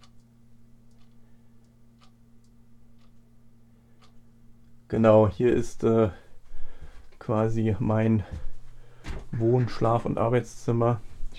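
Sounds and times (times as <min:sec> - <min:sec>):
wall clock ticking: 0:00.0 - 0:08.4
low constant electrical hum: 0:00.0 - 0:11.3
speech: 0:04.9 - 0:06.2, 0:07.2 - 0:08.5, 0:09.3 - 0:11.3.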